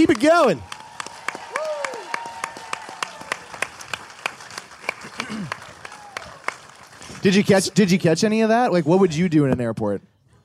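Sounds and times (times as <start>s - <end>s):
speech: 0.0s - 0.8s, 7.2s - 10.1s
live audience applause: 0.0s - 8.0s
cheering and whoops: 0.4s - 3.8s, 5.4s - 6.6s.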